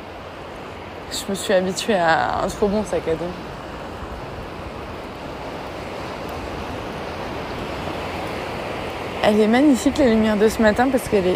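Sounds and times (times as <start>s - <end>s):
gentle ocean waves on a calm morning: 0.0s - 11.3s
speech: 1.1s - 3.6s, 9.3s - 11.3s.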